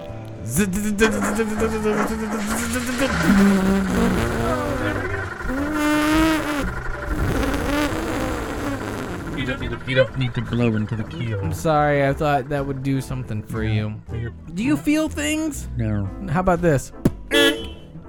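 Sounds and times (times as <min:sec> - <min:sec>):
speech: 0:00.5 - 0:06.0, 0:09.5 - 0:17.6
person vocally imitating a car engine starting and revving: 0:00.5 - 0:11.5.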